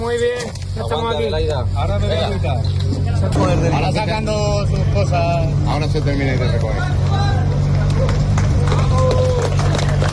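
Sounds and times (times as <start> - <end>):
speech: 0.0 - 7.2
low engine hum: 0.6 - 10.1
crowd clapping and cheering for rescued woman outdoors: 7.1 - 10.1.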